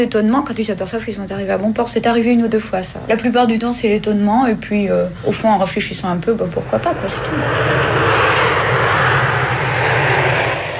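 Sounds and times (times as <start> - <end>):
speech: 0.0 - 8.4
Concorde supersonic jet aircraft taking off: 5.3 - 10.7.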